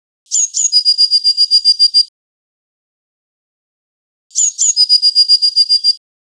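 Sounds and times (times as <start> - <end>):
blue tit song with trill: 0.3 - 2.1, 4.3 - 6.0.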